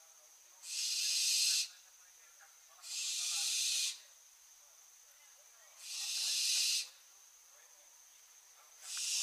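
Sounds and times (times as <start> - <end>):
barn owl Tyto alba giving harsh hissing screeches: 0.6 - 1.8, 2.8 - 4.0, 5.8 - 7.0, 8.8 - 9.2.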